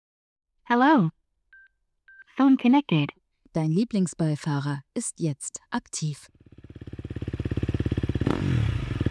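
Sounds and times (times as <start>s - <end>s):
speech: 0.7s - 1.2s, 2.4s - 6.4s
motorcycle engine cranking, starting and revving: 6.4s - 9.0s.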